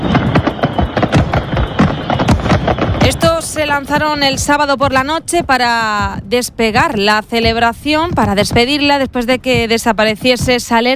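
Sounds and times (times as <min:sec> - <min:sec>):
fireworks rockets exploding: 0:00.0 - 0:05.2
speech: 0:03.7 - 0:10.9.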